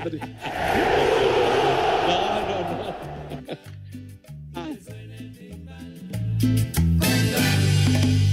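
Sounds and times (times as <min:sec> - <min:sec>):
speech: 0:00.0 - 0:00.8
laughter: 0:00.0 - 0:03.9
loud upbeat pop song with thumping beat, bass and sung vocal: 0:04.5 - 0:08.2.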